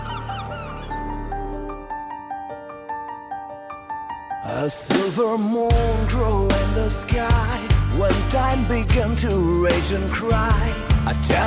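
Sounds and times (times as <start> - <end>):
seagulls calling: 0.0 - 2.1
speech: 4.4 - 11.4
rhythmic plucked notes: 5.7 - 11.4.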